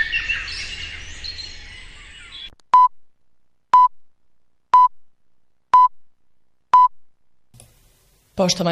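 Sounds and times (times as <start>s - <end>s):
birds chirping: 0.0s - 2.9s
speech: 8.4s - 8.6s.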